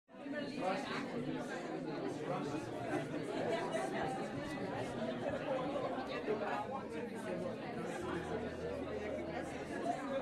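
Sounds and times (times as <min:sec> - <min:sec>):
crowd noise: 0:00.1 - 0:10.2.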